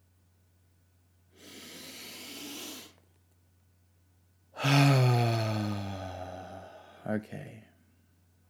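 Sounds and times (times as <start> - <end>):
person taking a deep breath: 1.3 - 3.0, 4.6 - 7.1
speech: 7.1 - 7.7.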